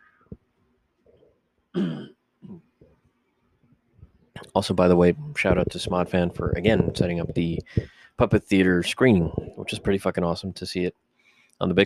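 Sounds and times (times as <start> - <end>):
person coughing after coffee went down the wrong pipe: 1.8 - 2.6
speech: 4.5 - 11.0, 11.6 - 11.8.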